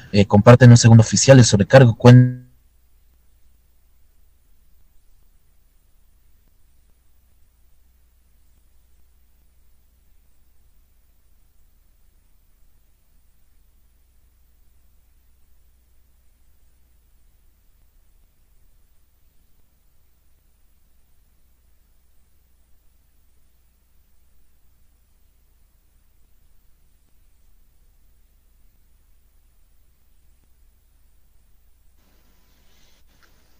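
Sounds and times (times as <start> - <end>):
broadband static hiss from broadcast interference: 0.0 - 33.5
speech: 0.1 - 2.4.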